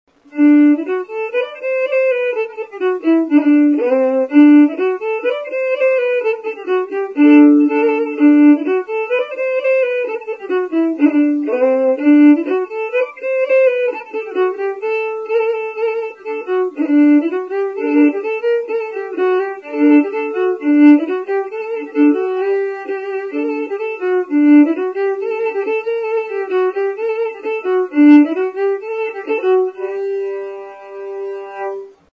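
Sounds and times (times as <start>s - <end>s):
bourree folk dance music from Dauphiné, Rhône-Alpes: 0.1s - 32.1s.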